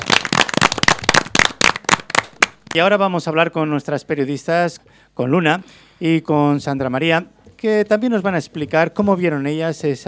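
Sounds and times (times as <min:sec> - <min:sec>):
loud burst of applause: 0:00.0 - 0:02.8
speech: 0:02.8 - 0:10.0.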